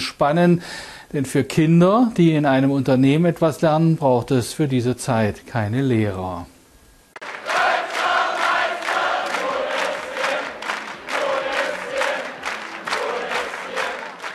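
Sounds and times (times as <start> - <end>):
speech: 0.2 - 6.5
large crowd cheering and chanting awaiting a handball team: 7.2 - 14.3.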